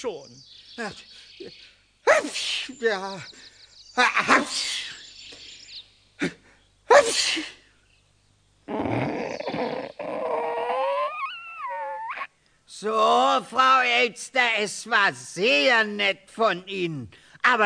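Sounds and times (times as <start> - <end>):
speech: 0.0 - 4.8, 6.2 - 7.6, 12.8 - 17.6
person sneezing: 6.2 - 7.6
long whiny rising vocal moan: 8.7 - 12.3.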